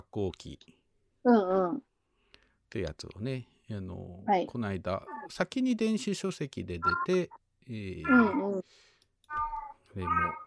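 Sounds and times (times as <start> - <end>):
speech: 0.1 - 1.9, 2.7 - 9.4, 10.0 - 10.4
cat meowing: 8.1 - 8.4, 9.3 - 10.4.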